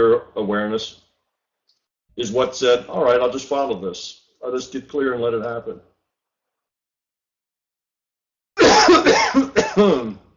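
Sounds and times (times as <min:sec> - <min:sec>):
speech: 0:00.0 - 0:01.0, 0:02.2 - 0:05.9, 0:08.8 - 0:10.2
harsh dry coughs from a person with a dry throat: 0:08.6 - 0:10.3.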